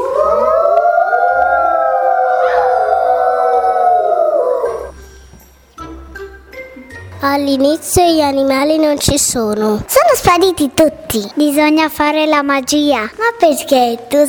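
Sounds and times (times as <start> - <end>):
wolf howling: 0.0 - 4.9
speech: 7.2 - 14.2.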